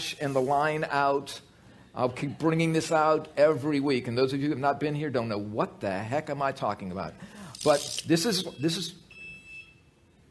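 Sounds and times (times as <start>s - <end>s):
speech: 0.0s - 9.0s
high-pitched electronic fire alarm tone: 8.4s - 9.9s.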